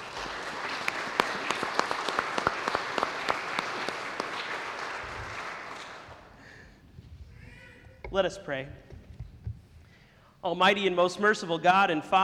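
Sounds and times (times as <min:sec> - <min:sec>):
roomful of people applauding: 0:00.0 - 0:06.5
speech: 0:08.2 - 0:09.0, 0:10.4 - 0:12.2.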